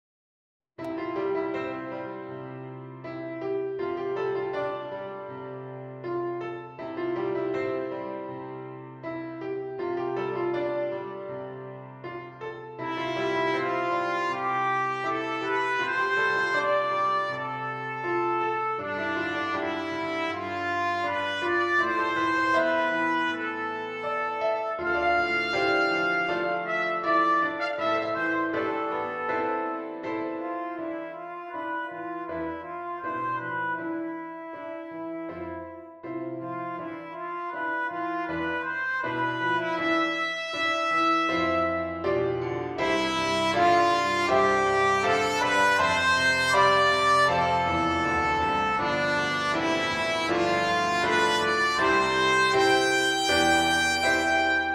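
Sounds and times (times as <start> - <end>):
trumpet, flugelhorn or cornet melody: 0.8 - 54.7.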